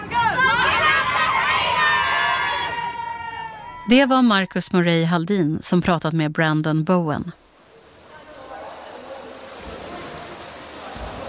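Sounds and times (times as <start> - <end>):
crowd of young girl fans screaming and shrieking: 0.0 - 3.9
speech: 3.9 - 7.4.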